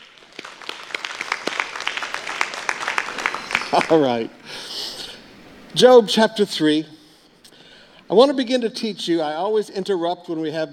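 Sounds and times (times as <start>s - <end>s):
audience applauding: 0.0s - 4.3s
speech: 3.7s - 4.7s, 5.7s - 7.0s, 8.1s - 10.7s.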